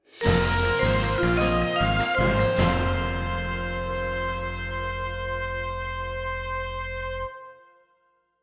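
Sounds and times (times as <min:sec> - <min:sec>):
vibraphone: 0:00.2 - 0:05.6
trumpet: 0:00.2 - 0:08.1.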